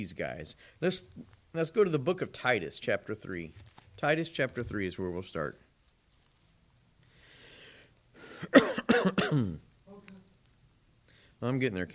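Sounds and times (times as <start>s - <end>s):
speech: 0.0s - 5.6s, 8.4s - 9.7s, 11.4s - 11.9s
coughing: 8.4s - 10.1s
throat clearing: 8.5s - 9.6s.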